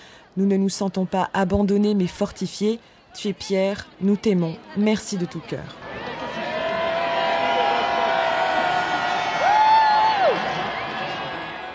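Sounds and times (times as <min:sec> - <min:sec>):
speech: 0:00.4 - 0:06.0
large enthusiastic crowd cheering outdoors in a square: 0:05.8 - 0:11.7
people whooping and shouting in a crowd: 0:06.2 - 0:11.7.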